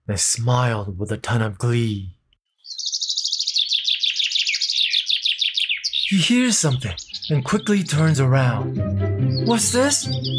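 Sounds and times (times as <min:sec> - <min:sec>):
speech: 0:00.1 - 0:02.2, 0:06.1 - 0:10.3
small bird chirping: 0:02.4 - 0:08.2, 0:09.3 - 0:10.3.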